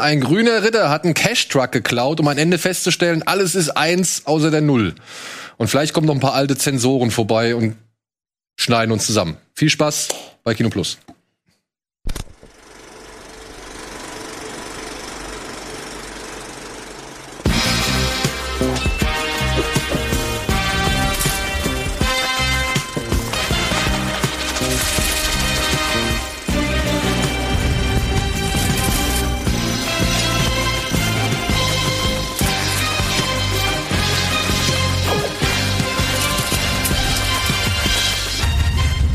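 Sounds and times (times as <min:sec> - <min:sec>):
speech: 0:00.0 - 0:07.9, 0:08.6 - 0:11.2
loud podcast intro music with heavy driving beat and layered instruments: 0:17.5 - 0:39.0.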